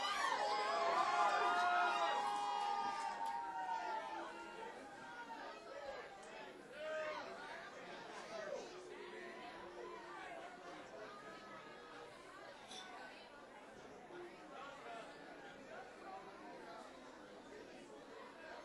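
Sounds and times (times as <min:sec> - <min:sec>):
packed bar crowd in Wilkes-Barre cheering and whooping after a band's set: 0:00.0 - 0:06.0.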